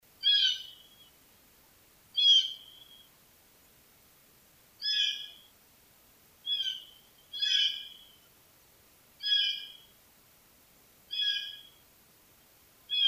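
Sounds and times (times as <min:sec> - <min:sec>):
blue jay calling: 0:00.2 - 0:01.1, 0:02.1 - 0:03.1, 0:04.8 - 0:05.5, 0:06.4 - 0:08.3, 0:09.2 - 0:09.9, 0:11.1 - 0:11.8, 0:12.9 - 0:13.0.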